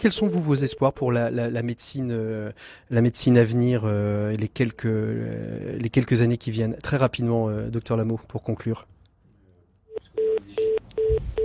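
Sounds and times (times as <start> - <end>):
speech: 0.0 - 8.9
short beeps of a telephone line cutting off: 9.9 - 11.4.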